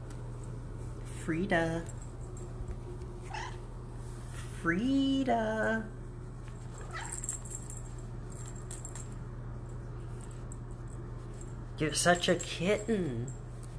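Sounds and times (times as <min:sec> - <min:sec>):
steady low hum: 0:00.0 - 0:13.7
speech: 0:01.3 - 0:02.0, 0:04.6 - 0:06.0, 0:11.8 - 0:13.4
kitten meowing: 0:03.3 - 0:03.6.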